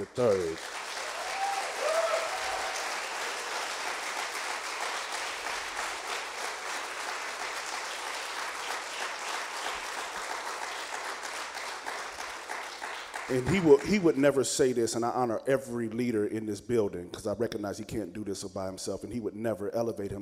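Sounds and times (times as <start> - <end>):
speech: 0.0 - 0.8, 13.3 - 20.1
large crowd applauding in a church: 0.0 - 14.4.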